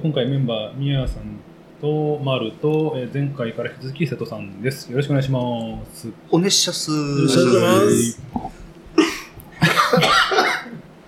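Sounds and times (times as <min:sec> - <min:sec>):
speech: 0:00.0 - 0:08.6
person coughing and spluttering: 0:09.0 - 0:10.8.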